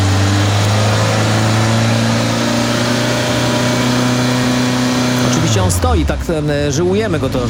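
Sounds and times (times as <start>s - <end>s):
just-started car engine running and revved while standing still: 0.0s - 7.4s
speech: 5.7s - 7.4s.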